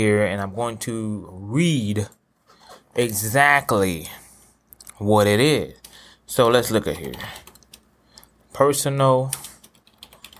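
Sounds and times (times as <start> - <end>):
speech: 0.0 - 2.2, 3.0 - 4.2, 5.0 - 7.4, 8.6 - 9.5
typing on a computer keyboard: 5.8 - 7.8, 9.3 - 10.3.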